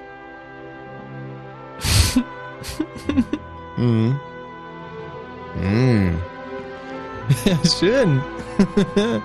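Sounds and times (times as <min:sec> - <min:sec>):
romantic Hollywood-style production library orchestral music: 0:00.0 - 0:09.2
person laughing: 0:01.8 - 0:04.2, 0:08.3 - 0:09.2
speech: 0:02.1 - 0:04.3, 0:05.5 - 0:06.3, 0:07.3 - 0:09.2.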